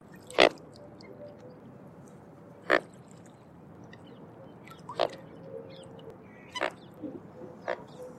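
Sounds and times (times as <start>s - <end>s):
mute swan calling: 3.9s - 8.1s.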